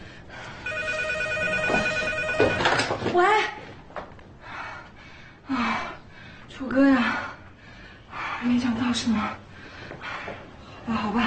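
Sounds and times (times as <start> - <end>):
telephone ringing with a steady electronic tone: 0.6 - 3.0
speech: 3.1 - 3.6, 6.6 - 7.2, 8.5 - 9.4, 10.9 - 11.2.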